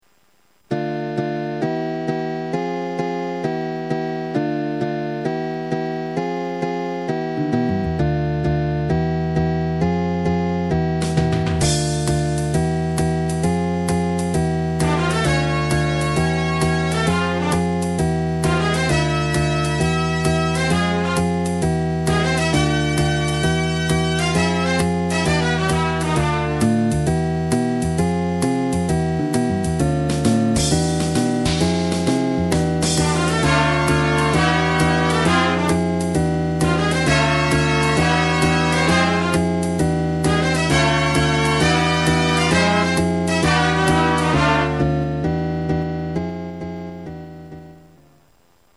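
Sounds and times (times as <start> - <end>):
jazz music: 0.1 - 48.7.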